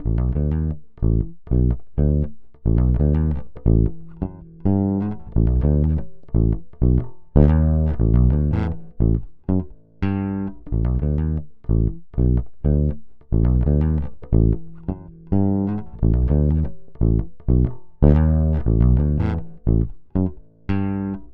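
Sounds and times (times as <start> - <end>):
original electric bass for compressor comparison: 0.0 - 21.3.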